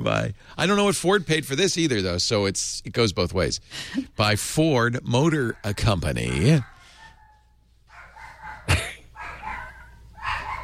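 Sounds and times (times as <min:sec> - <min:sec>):
speech: 0:00.0 - 0:06.7
excited dog whining and yelping: 0:05.5 - 0:10.6.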